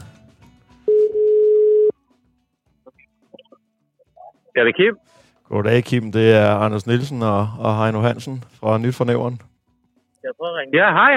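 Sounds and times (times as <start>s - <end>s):
telephone ringback tone of an outgoing call: 0.9s - 2.0s
speech: 4.6s - 9.5s, 10.2s - 11.1s.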